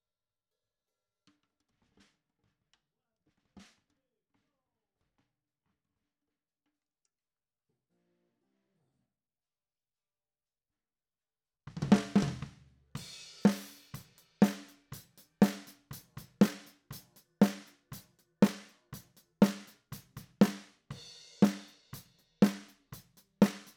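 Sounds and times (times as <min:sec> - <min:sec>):
snare drum top hit: 0:13.4 - 0:16.8, 0:19.4 - 0:20.8, 0:21.4 - 0:23.7.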